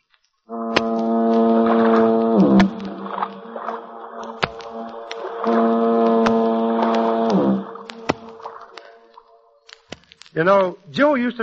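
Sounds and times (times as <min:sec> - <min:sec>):
faint clicks: 0:00.0 - 0:11.0
foghorn blasts across the bay: 0:00.5 - 0:08.6
speech: 0:10.4 - 0:11.4.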